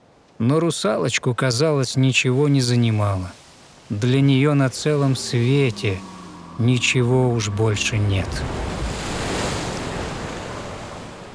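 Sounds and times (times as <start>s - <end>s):
speech: 0.4s - 8.7s
rough sea waves surging and crashing before a storm: 0.6s - 11.3s
strong wind roaring across the microphone: 3.9s - 11.3s.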